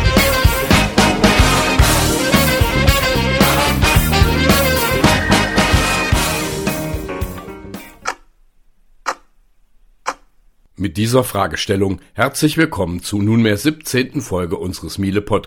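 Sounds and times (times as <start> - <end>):
loud busy music: 0.0 - 7.9
bomb time fuse ticking: 8.0 - 8.3, 9.0 - 10.4
speech: 10.8 - 15.4.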